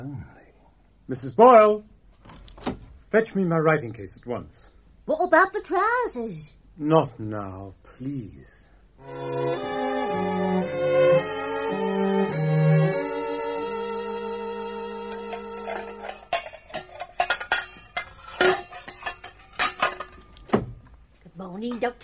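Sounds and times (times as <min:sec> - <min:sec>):
speech: 0:01.1 - 0:01.9, 0:03.1 - 0:10.4, 0:21.6 - 0:22.0
short melodic passage: 0:09.0 - 0:16.2
pots and pans clattering: 0:15.1 - 0:20.8.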